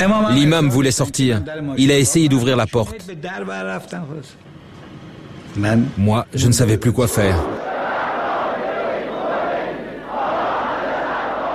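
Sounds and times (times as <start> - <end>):
speech: 0.0 - 4.5, 5.5 - 7.6
roar of massed voices from a huge crowd surrounding a slowly moving car: 7.5 - 11.5.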